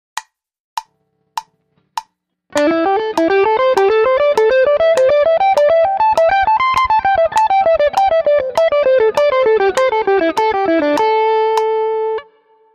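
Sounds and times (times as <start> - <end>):
two strings plucked in a pentatonic pattern: 0.9 - 12.4.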